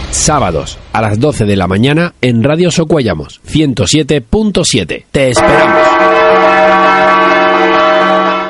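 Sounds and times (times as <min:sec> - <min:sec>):
speech: 0:00.2 - 0:07.1
church bells ringing: 0:05.4 - 0:08.4.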